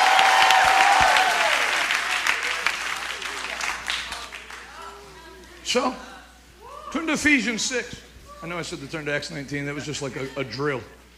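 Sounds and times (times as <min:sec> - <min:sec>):
church congregation clapping at a revival night service in West Virginia: 0:00.0 - 0:04.8
speech: 0:05.7 - 0:06.1, 0:06.9 - 0:11.0.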